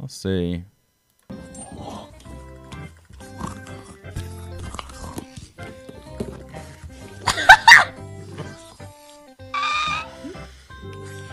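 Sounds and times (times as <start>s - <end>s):
speech: 0.1s - 0.7s
faint grunting and murmuring: 1.6s - 7.2s, 8.0s - 11.3s
laughter: 7.2s - 8.0s
small dog yapping and whining: 7.5s - 7.9s.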